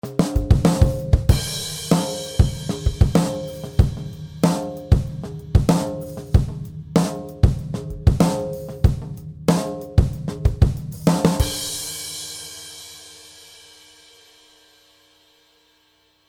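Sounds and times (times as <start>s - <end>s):
tight old drum kit: 0.0s - 14.4s.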